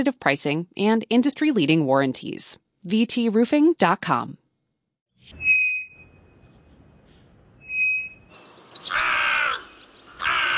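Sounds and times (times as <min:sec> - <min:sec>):
speech: 0:00.0 - 0:04.4
two clear whistled bird notes outdoors: 0:07.6 - 0:08.4
loud harsh raspy cawing calls: 0:08.7 - 0:10.5.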